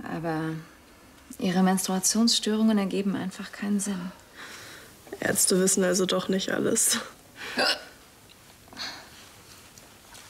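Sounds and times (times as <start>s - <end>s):
speech: 0.2s - 0.7s, 1.3s - 4.6s, 5.2s - 7.9s
hiccups: 7.6s - 8.0s.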